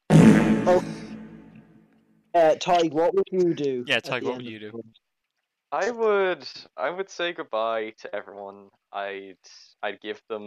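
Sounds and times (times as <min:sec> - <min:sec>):
fart sound effect played from a soundboard: 0:00.0 - 0:01.6
speech: 0:00.7 - 0:00.9, 0:02.4 - 0:05.0, 0:05.7 - 0:10.4.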